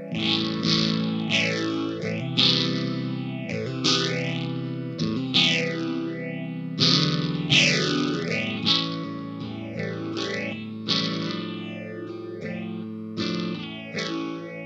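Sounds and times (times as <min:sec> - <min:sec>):
B.C. Rich Mockingbird electric guitar through a Spaceman Explorer phaser pedal into an amp: 0:00.0 - 0:14.6.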